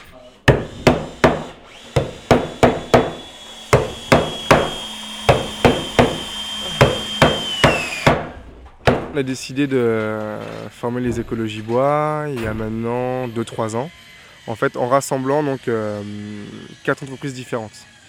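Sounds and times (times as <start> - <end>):
high machine whine on a construction site: 0.0 - 8.6, 10.8 - 18.0
hammer striking wood on a wooden building site: 0.0 - 9.2
speech: 9.2 - 18.0.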